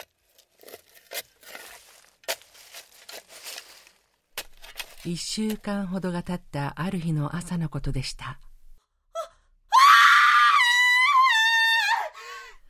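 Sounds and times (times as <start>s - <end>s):
shovel digging into loose soil in a vacant lot: 0.0s - 5.7s
speech: 5.0s - 8.5s
woman screaming in a vacant lot: 9.2s - 12.2s.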